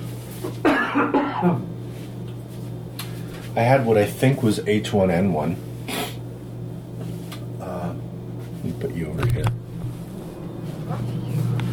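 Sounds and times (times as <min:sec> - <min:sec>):
low steady hum: 0:00.0 - 0:11.7
person coughing with a throaty rough quality: 0:00.6 - 0:01.7
speech: 0:01.0 - 0:01.8, 0:03.6 - 0:05.7.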